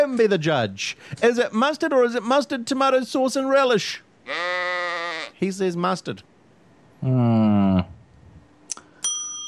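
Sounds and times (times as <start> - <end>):
speech: 0.0 - 4.6, 5.4 - 6.3, 7.0 - 7.9
buzzy bleat-like vocal sound: 4.2 - 5.4
small bell ringing: 9.0 - 9.4.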